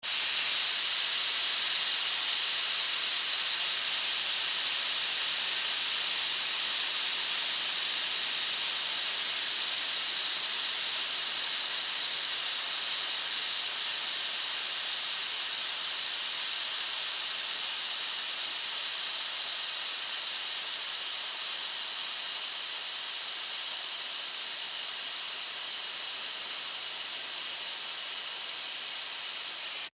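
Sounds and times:
pesticide fogger spraying for insect extermination: 0.0s - 29.9s.

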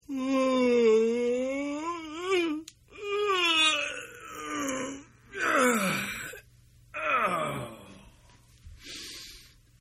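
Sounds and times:
person yawning: 0.0s - 6.4s, 7.0s - 8.2s.

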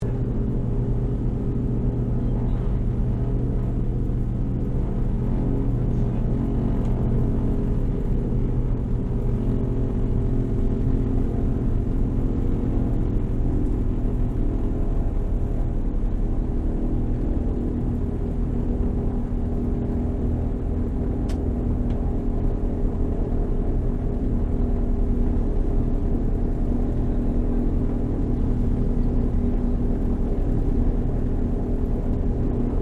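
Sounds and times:
Douglas DC3 airplane taxiing interior: 0.0s - 32.7s.

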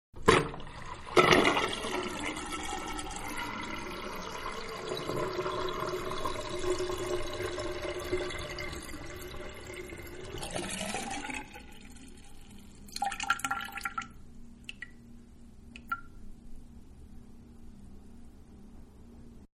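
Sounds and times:
household bathroom sink draining: 0.2s - 14.1s.

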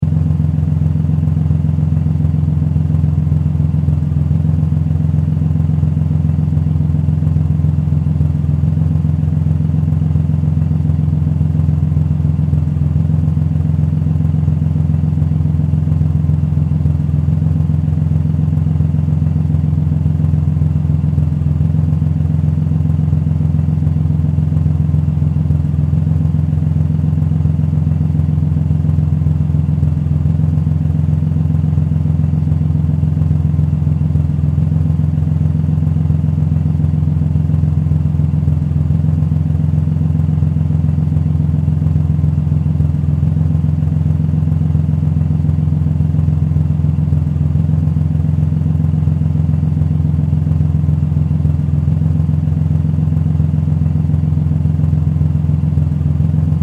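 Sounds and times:
power car engine idling: 0.0s - 56.6s.

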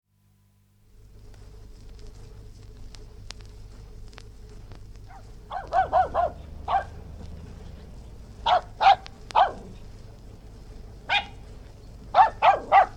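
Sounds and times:
West Highland white terrier barking in short sharp yaps outdoors: 5.1s - 7.0s, 8.4s - 9.7s, 11.1s - 11.4s, 12.1s - 12.9s.

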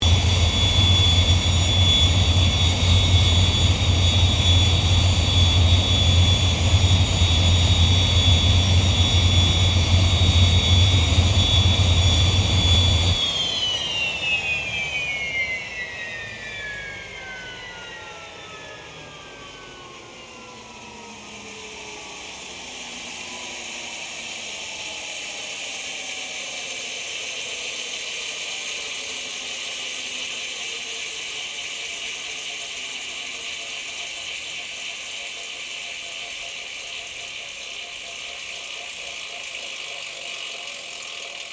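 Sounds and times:
CA-27 Sabre jet aircraft idling and shutting down: 0.0s - 41.5s.

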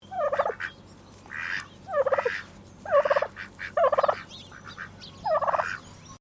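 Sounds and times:
domestic turkey gobbling call sequence: 0.1s - 5.8s.

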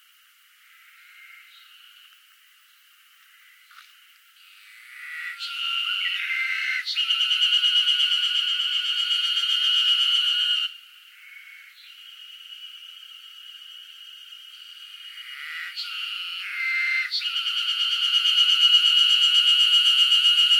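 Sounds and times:
cicada buzzing in northern Japan in summer: 0.0s - 20.5s.

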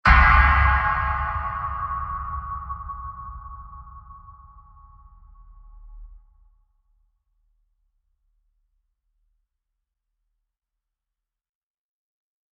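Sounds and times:
long deep metal impact blast: 0.1s - 5.2s.

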